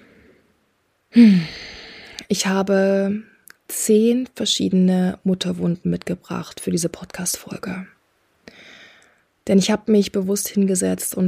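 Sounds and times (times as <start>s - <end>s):
speech: 1.1s - 1.6s, 2.3s - 8.0s, 9.5s - 11.2s
single deep breath let out as a sigh: 1.1s - 2.2s.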